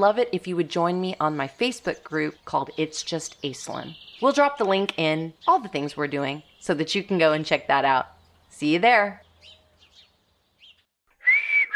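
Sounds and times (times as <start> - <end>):
speech: 0.0 - 9.2
breathy human whistle holding a steady high note: 11.2 - 11.7.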